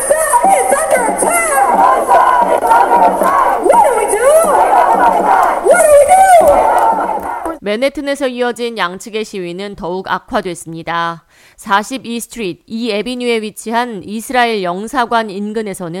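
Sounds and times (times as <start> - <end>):
large outdoor crowd of Palestinian-American protesters shouting and chanting in Paterson, New Jersey: 0.0 - 7.6
speech: 7.7 - 15.9.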